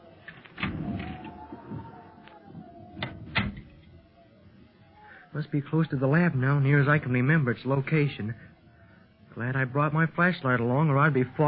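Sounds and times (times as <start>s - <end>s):
door slowly creaking open with squealing hinges: 2.8s - 3.9s
speech: 5.4s - 8.5s, 9.4s - 11.4s.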